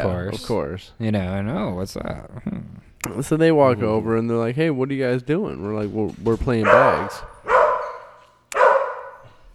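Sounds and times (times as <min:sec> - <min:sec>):
speech: 0:00.0 - 0:07.3
dog barking: 0:06.6 - 0:09.4.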